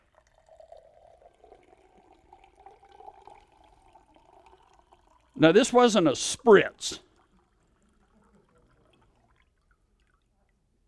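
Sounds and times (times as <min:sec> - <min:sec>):
water pouring in a continuous stream: 0:00.0 - 0:10.4
speech: 0:05.4 - 0:07.0.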